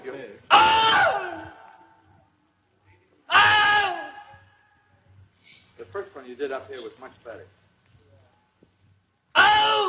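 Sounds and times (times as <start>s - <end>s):
man screaming in pain after alligator bite: 0.5s - 1.6s, 3.3s - 4.3s, 9.4s - 9.8s
speech: 6.3s - 7.6s.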